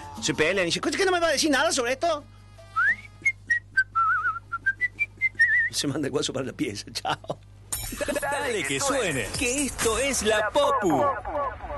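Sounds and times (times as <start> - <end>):
speech: 0.2 - 2.4, 5.7 - 11.6
person whistling a short lively tune: 2.8 - 5.7.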